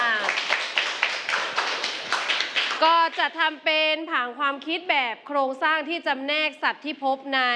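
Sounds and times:
room full of people clapping for a student group: 0.0s - 3.4s
speech: 2.8s - 7.5s.

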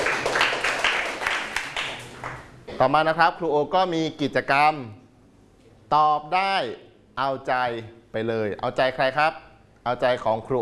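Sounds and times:
people clapping during a lesson: 0.0s - 2.6s
speech: 2.8s - 5.0s, 5.9s - 10.6s.

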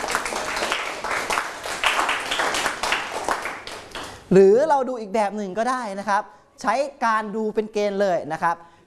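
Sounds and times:
classroom of people clapping: 0.0s - 4.3s
speech: 4.3s - 8.7s.

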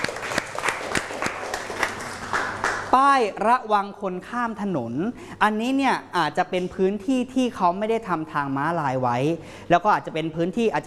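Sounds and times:
faint applause: 0.0s - 3.0s
speech: 2.9s - 10.8s.

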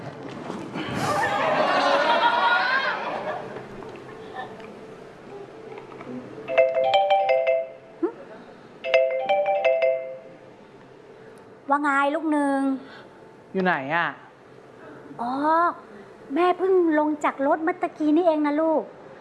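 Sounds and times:
laughter: 0.8s - 3.6s
phone ringtone melody during an outgoing call: 6.5s - 7.8s, 8.8s - 10.4s
speech: 11.8s - 14.2s, 15.2s - 19.0s.

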